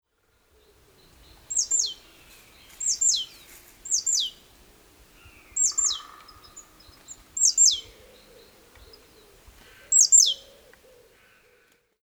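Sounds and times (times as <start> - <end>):
great tit Parus major calling: 0.6 - 11.4.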